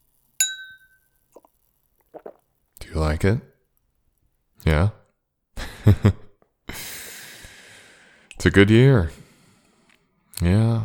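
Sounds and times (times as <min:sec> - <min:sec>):
red wine glasses clinking in a toast: 0:00.4 - 0:01.1
speech: 0:03.0 - 0:03.5, 0:04.6 - 0:05.0, 0:05.8 - 0:06.2, 0:08.4 - 0:09.2, 0:10.4 - 0:10.8.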